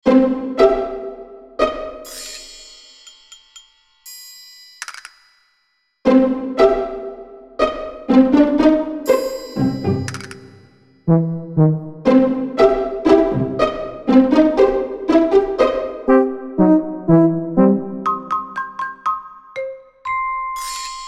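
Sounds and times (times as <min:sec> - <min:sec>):
quirky cartoon music: 0:00.0 - 0:02.9, 0:06.0 - 0:21.0.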